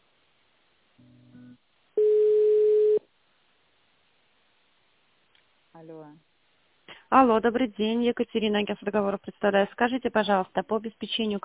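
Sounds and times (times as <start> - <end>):
soft low two-tone telephone line buzz while a call is transferred: 0.9 - 3.0
speech: 5.8 - 6.3, 6.9 - 11.4.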